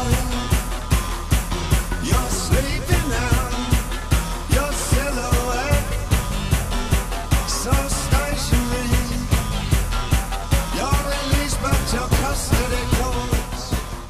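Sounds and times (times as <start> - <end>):
loud driving rock song with distorted guitars: 0.0 - 14.0.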